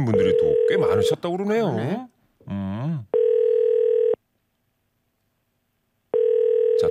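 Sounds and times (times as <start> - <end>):
speech: 0.0 - 3.1
telephone ringback tone electronic buzz over the line: 0.1 - 1.1, 3.2 - 4.2, 6.2 - 6.8.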